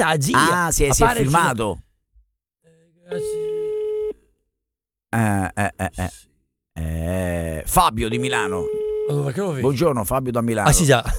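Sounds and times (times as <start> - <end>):
speech: 0.0 - 1.8, 3.1 - 3.5, 5.1 - 11.1
telephone line tone while dialing a number: 3.1 - 4.2, 8.2 - 9.4.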